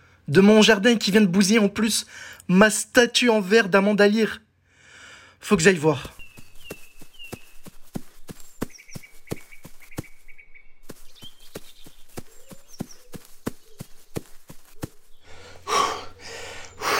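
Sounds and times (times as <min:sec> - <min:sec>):
speech: 0:00.3 - 0:04.4, 0:05.4 - 0:06.2
birds chirping: 0:05.4 - 0:16.9
quick footsteps through a large garden: 0:05.6 - 0:16.9
heavy panting after running: 0:15.1 - 0:16.9.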